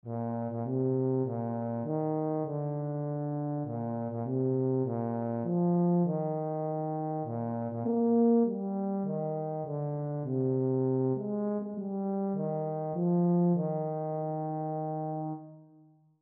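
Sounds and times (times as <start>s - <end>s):
baritone horn: 0.1s - 15.8s.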